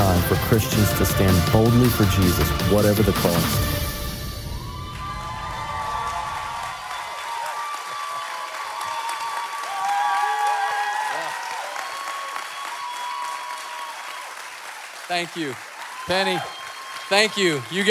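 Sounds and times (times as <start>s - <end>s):
large crowd applauding: 0.0s - 17.8s
speech: 0.2s - 3.8s, 15.1s - 17.8s
crowd cheers and whoops: 4.4s - 17.8s.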